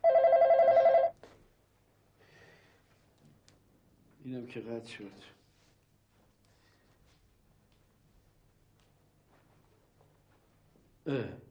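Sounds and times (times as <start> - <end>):
telephone ringing in a home: 0.0 - 1.2
speech: 4.3 - 5.4, 11.1 - 11.4.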